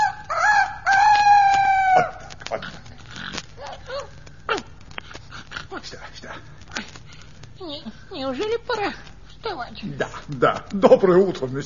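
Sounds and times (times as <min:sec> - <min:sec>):
rooster crowing: 0:00.0 - 0:02.4
speech: 0:09.8 - 0:11.6.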